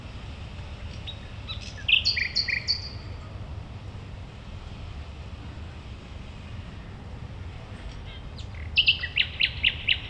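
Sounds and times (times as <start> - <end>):
common nightingale song at a playground in Berlin: 1.5 - 3.0, 8.8 - 10.0.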